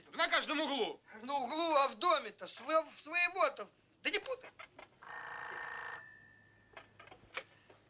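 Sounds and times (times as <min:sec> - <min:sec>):
speech: 0:00.3 - 0:05.2
telephone bell ringing: 0:05.0 - 0:07.0.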